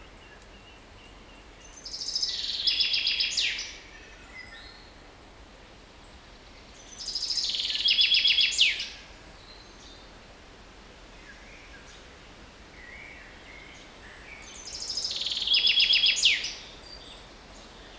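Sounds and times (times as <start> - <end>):
Common chaffinch Fringilla coelebs singing: 0.0 - 5.0, 6.5 - 10.0, 12.8 - 17.9
faint background hiss: 0.0 - 17.9.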